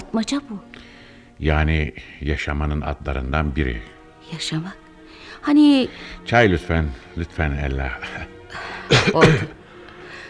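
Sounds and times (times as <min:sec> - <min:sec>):
speech: 0:00.1 - 0:04.8, 0:05.4 - 0:09.6
harsh coughs: 0:08.6 - 0:09.6.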